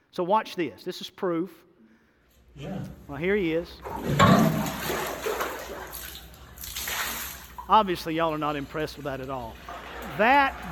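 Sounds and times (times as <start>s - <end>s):
speech: 0.1s - 1.7s, 2.6s - 5.2s, 7.7s - 10.7s
water seeping out from under a baptistry pot: 3.8s - 10.7s.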